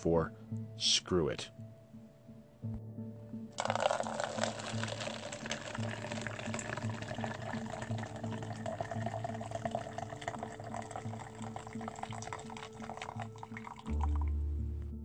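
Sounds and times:
speech: 0.0s - 1.6s
coffee pouring into a cup: 3.6s - 14.3s.

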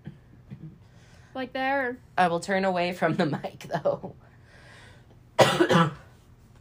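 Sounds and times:
double cough: 0.0s - 0.8s, 5.4s - 6.2s
speech: 1.3s - 4.2s.

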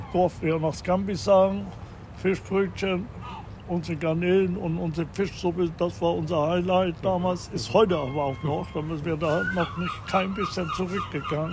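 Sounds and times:
seagulls calling: 0.0s - 1.6s, 2.4s - 4.1s, 7.1s - 11.5s
speech: 0.1s - 11.5s.

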